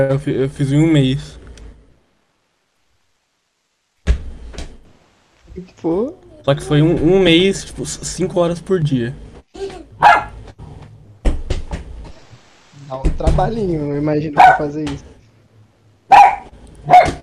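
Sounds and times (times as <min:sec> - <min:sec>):
speech: 0:00.0 - 0:01.4, 0:05.6 - 0:10.2, 0:12.9 - 0:15.1
dog barking: 0:10.0 - 0:10.4, 0:14.4 - 0:14.7, 0:16.1 - 0:17.2.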